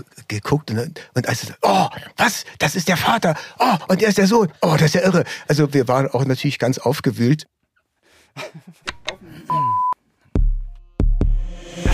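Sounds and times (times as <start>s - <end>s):
speech: 0.0s - 7.6s, 8.4s - 9.8s
short electronic alarm beep: 9.5s - 10.0s.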